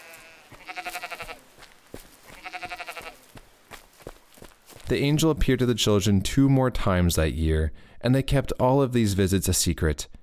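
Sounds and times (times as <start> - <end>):
sheep bleating: 0.0 - 3.4
speech: 4.9 - 10.2.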